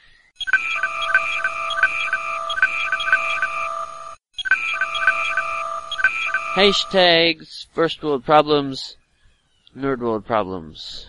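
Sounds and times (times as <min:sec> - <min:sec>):
overlapping phone and tablet notification tones: 0:00.4 - 0:07.0
speech: 0:06.6 - 0:09.0, 0:09.8 - 0:11.0.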